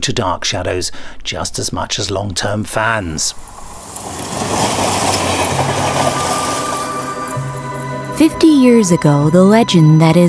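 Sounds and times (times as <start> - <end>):
speech: 0.0 - 5.1, 8.2 - 10.2
train rumbling along the rails: 2.8 - 9.0.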